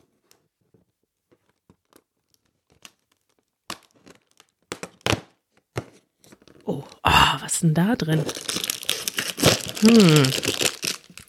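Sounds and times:
paper tearing as a small cardboard advent calendar door is pried open: 1.9s - 5.2s, 8.0s - 11.2s
speech: 6.7s - 8.6s, 9.8s - 10.6s.

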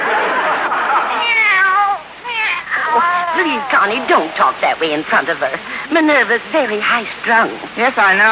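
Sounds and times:
laughter: 0.0s - 1.3s
kitten meowing: 1.2s - 3.9s
speech: 3.8s - 8.2s.

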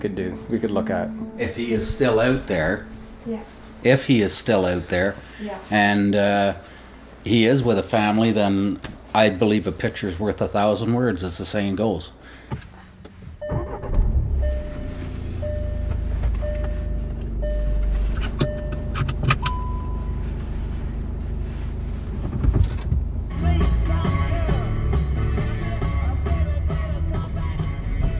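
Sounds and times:
faint tonal hums: 0.0s - 5.4s, 12.7s - 23.3s
speech: 0.0s - 12.7s
car engine and road rumble on a road trip from Ajax, Ontario, toward Arnprior: 12.5s - 28.1s.

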